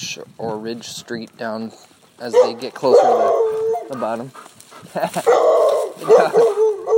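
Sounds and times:
speech: 0:00.2 - 0:06.6
dog barking and yelping on a street: 0:02.2 - 0:04.2, 0:05.1 - 0:06.9.

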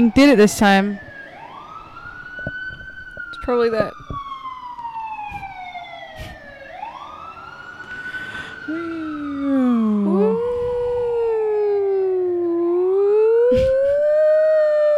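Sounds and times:
speech: 0:00.0 - 0:01.0, 0:03.4 - 0:04.1
emergency vehicle siren wailing outside: 0:00.0 - 0:14.9.

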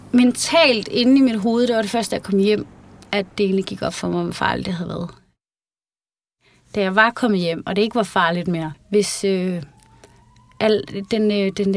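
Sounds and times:
speech: 0:00.1 - 0:05.2, 0:06.7 - 0:09.7, 0:10.6 - 0:11.7
Danish ambulance siren in two-tone blasts: 0:08.3 - 0:11.7.

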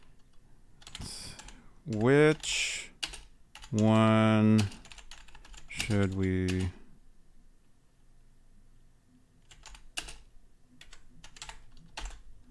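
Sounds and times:
computer keyboard typing: 0:00.0 - 0:02.4, 0:03.0 - 0:06.7, 0:09.4 - 0:12.5
speech: 0:01.8 - 0:02.8, 0:03.7 - 0:04.8, 0:05.9 - 0:06.8.

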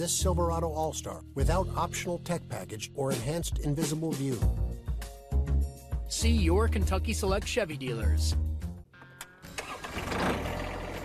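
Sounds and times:
speech: 0:00.0 - 0:04.8, 0:06.1 - 0:08.5
tractor engine starting: 0:09.0 - 0:11.0.

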